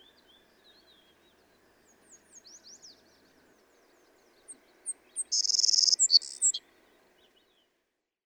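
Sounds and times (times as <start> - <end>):
Savannah sparrow song with high ticks and sizzling buzzy trill: 0.0 - 7.7
faint twittering: 4.9 - 6.6.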